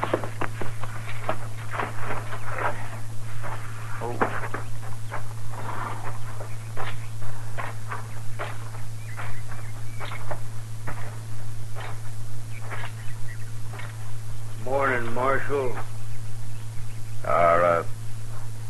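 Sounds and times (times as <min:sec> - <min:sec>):
footsteps of people walking up: 0:00.0 - 0:17.2
constant low hum: 0:00.0 - 0:18.6.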